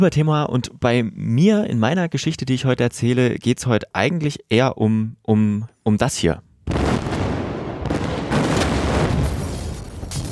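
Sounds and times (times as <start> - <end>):
speech: 0.0 - 7.1
loud rumbling explosion with low-end roar and crackling bursts: 6.7 - 10.3.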